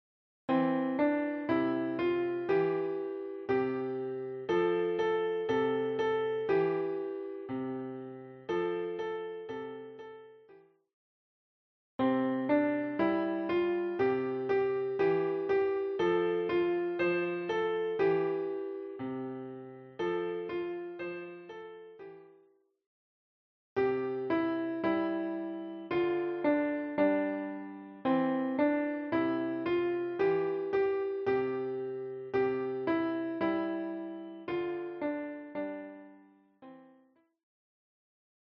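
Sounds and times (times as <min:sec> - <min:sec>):
piano playing children's songs: 0:00.5 - 0:10.6, 0:12.0 - 0:22.4, 0:23.8 - 0:37.1.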